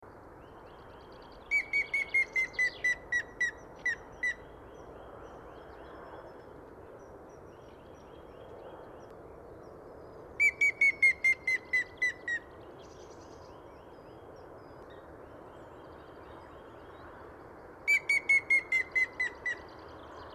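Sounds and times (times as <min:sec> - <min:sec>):
grey-headed woodpecker calling: 0:01.5 - 0:04.5, 0:10.4 - 0:12.5, 0:17.9 - 0:19.7.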